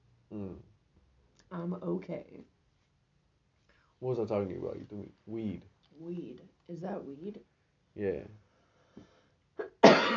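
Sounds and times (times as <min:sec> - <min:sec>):
speech: 0:01.5 - 0:02.6, 0:04.0 - 0:08.4
person coughing: 0:09.6 - 0:10.1.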